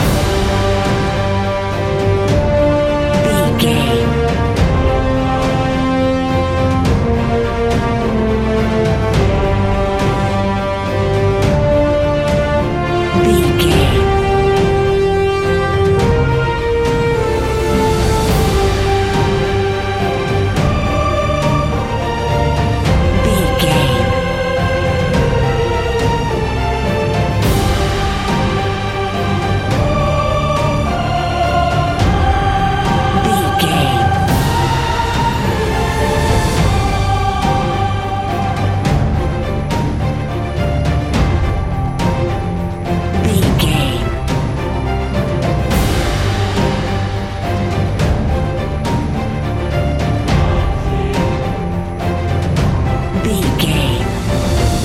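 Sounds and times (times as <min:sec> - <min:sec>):
epic cinematic music loop: 0:00.0 - 0:54.8.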